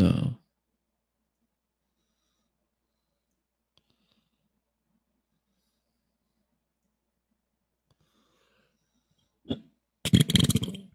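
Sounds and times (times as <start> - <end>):
man belching: 9.5 - 10.9.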